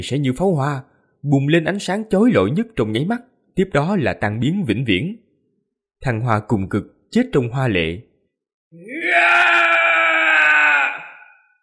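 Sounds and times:
speech: 0.0 - 5.2, 6.0 - 8.1, 8.7 - 9.7
man screaming loudly: 8.8 - 11.6.

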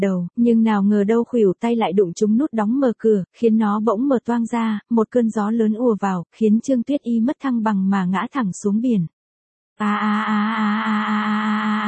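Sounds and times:
speech: 0.0 - 9.2, 9.8 - 11.8
woman screaming in shock: 9.8 - 11.8.

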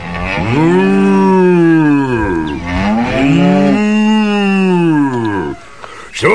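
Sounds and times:
cow mooing: 0.0 - 5.7.

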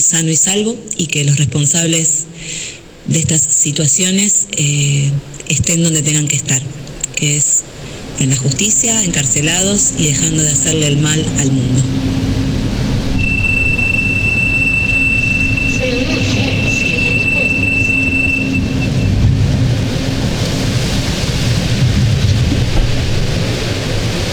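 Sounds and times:
speech: 0.1 - 12.2
metro train car rumbling in Santiago de Chile: 4.6 - 24.3
thin high-pitched whine of metro train: 8.0 - 23.4.

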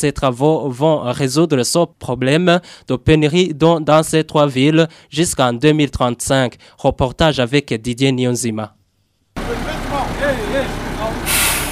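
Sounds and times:
speech: 0.0 - 8.8
truck engine rumble while laying a drinking water pipeline: 9.4 - 11.7
truck air-brake hiss: 11.2 - 11.7.

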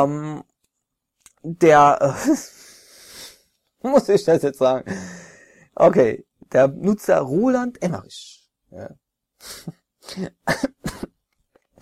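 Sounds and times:
speech: 0.0 - 0.5, 1.4 - 2.6, 3.8 - 5.1, 5.8 - 11.1
rough loud coughs: 10.1 - 11.2.

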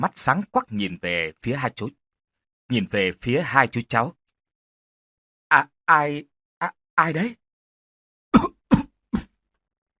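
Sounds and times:
speech: 0.0 - 2.0, 2.7 - 4.2, 5.5 - 7.4, 8.3 - 8.6
low rasping coughs as a ghost-story sound effect: 8.3 - 9.4.

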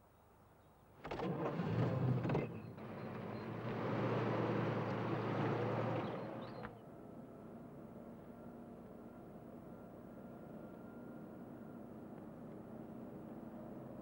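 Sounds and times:
car engine starting and settling into idle: 1.0 - 6.8.

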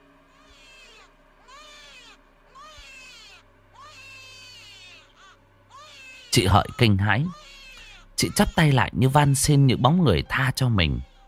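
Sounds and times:
steady low hum: 0.0 - 11.2
shrill wailing cries at a riverbank: 0.3 - 10.2
speech: 6.3 - 7.4, 8.2 - 11.1.

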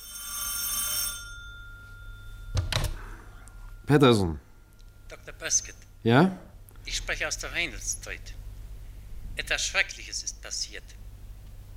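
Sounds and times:
telephone bell ringing: 0.0 - 4.3
low hum: 1.5 - 9.4
speech: 3.9 - 4.4, 5.4 - 8.4, 9.4 - 11.0.

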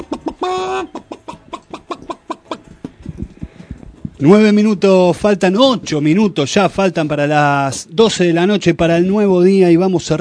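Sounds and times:
chicken clucking sound effect: 0.0 - 3.5
speech: 0.4 - 1.0, 4.2 - 10.1.

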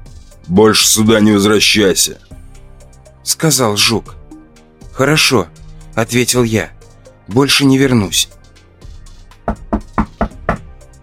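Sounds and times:
speech: 0.5 - 2.4, 3.3 - 4.2, 5.0 - 8.4
knocking on an apartment door: 9.4 - 10.8.

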